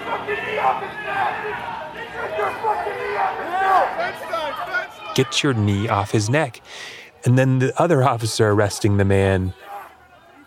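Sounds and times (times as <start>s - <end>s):
crowd of onlookers shouting: 0.0s - 10.4s
speech: 0.6s - 9.7s.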